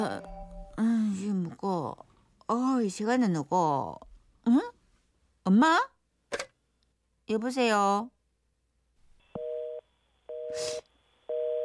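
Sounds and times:
speech: 0:00.0 - 0:04.7, 0:05.4 - 0:05.9, 0:07.3 - 0:08.2, 0:10.5 - 0:10.9
telephone busy signal after call hangs up: 0:09.3 - 0:11.6.

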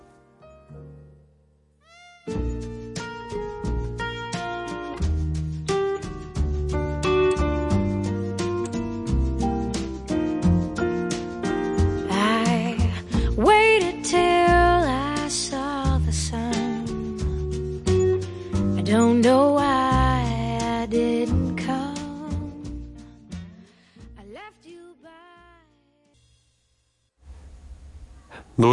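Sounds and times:
piano-like accompaniment: 0:02.2 - 0:23.8
mellow song played on the radio: 0:02.3 - 0:26.3
soft singing voice: 0:12.1 - 0:17.2, 0:18.8 - 0:22.6.

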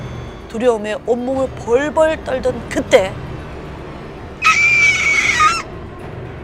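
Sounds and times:
speech: 0:00.5 - 0:03.3
young girl's sharp piercing scream: 0:04.4 - 0:05.7.

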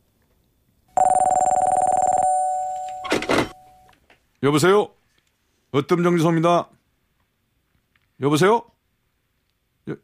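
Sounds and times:
old-style telephone bell ringing in a rattling burst: 0:01.0 - 0:03.9
speech: 0:04.4 - 0:05.0, 0:05.7 - 0:06.8, 0:08.2 - 0:08.7, 0:09.9 - 0:10.0.

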